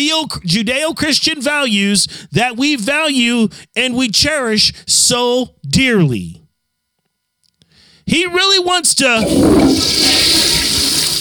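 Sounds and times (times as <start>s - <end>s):
speech: 0.0s - 6.4s, 8.1s - 10.8s
toilet flushing: 9.2s - 11.1s.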